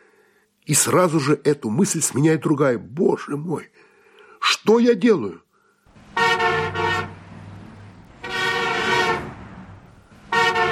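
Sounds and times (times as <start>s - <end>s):
speech: 0.7s - 5.4s
car horns honking impatiently in traffic: 6.0s - 10.7s.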